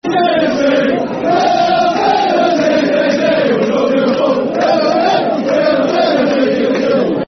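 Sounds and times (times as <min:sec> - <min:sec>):
football crowd chanting: 0:00.0 - 0:07.2.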